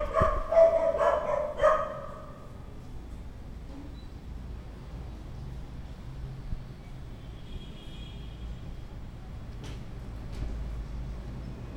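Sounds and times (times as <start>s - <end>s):
dog barking: 0.0s - 2.5s.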